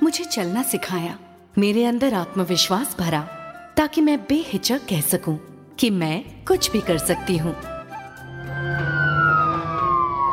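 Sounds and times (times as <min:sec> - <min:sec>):
speech: 0:00.1 - 0:07.7
ambulance siren wailing: 0:07.8 - 0:10.3.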